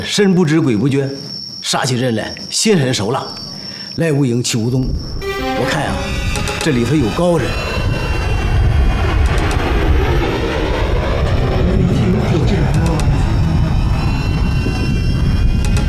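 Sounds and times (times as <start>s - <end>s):
speech: 0.0s - 7.9s
airplane engine roaring overhead: 5.2s - 15.8s.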